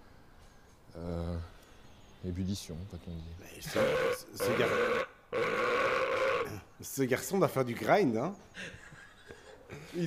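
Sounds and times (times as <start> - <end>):
speech: 2.2 - 5.8, 6.8 - 8.8
person belching in deep drawn-out bursts: 3.7 - 6.6.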